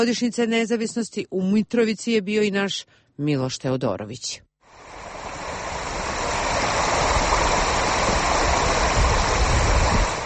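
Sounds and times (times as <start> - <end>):
speech: 0.0 - 4.9
Ibar River flowing through Mitrovica in Kosovo: 4.7 - 10.2.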